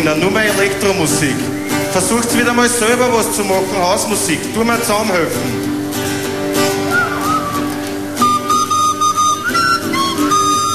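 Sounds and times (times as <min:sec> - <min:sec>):
speech: 0:00.0 - 0:05.7
dense noisy background at a music festival in Salzburg: 0:00.0 - 0:10.7
person whistling a wavering melody at a music festival in Salzburg: 0:01.4 - 0:02.3, 0:06.9 - 0:10.7.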